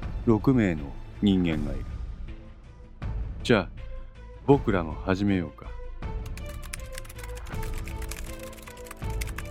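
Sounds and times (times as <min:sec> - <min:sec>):
speech: 0:00.2 - 0:02.0, 0:03.5 - 0:03.9, 0:04.5 - 0:06.1
several people typing on laptop computer keyboards: 0:06.2 - 0:09.4.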